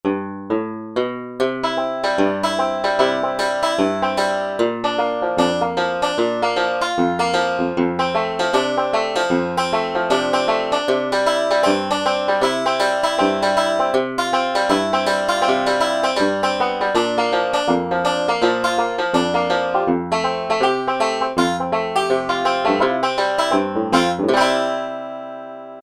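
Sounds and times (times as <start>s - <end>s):
banjo from a Roland SR-JV80-01 Pop sound board: 0.0s - 25.8s.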